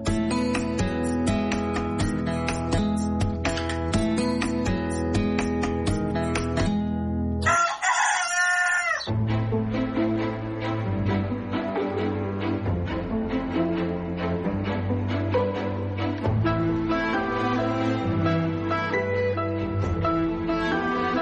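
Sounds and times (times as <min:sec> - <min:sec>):
steady instrumental music: 0:00.0 - 0:21.2
Prat blue-legged rooster crowing: 0:07.4 - 0:09.1.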